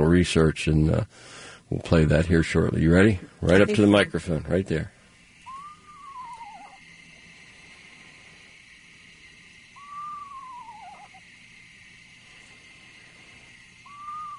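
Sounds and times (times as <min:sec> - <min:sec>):
speech: 0:00.0 - 0:05.0
hiss: 0:00.0 - 0:14.3
screech owl calling at night: 0:05.0 - 0:14.3.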